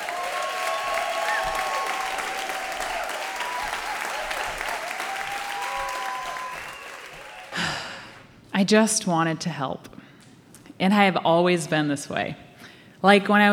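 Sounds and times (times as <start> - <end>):
large crowd applauding: 0.0 - 8.3
speech: 8.6 - 9.9, 10.8 - 12.4, 13.0 - 13.5.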